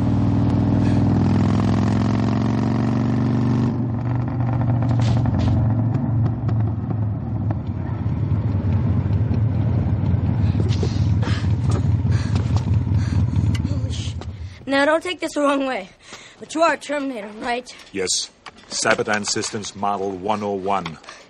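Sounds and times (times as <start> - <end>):
motorcycle engine rumbling: 0.0 - 15.1
speech: 14.7 - 21.2.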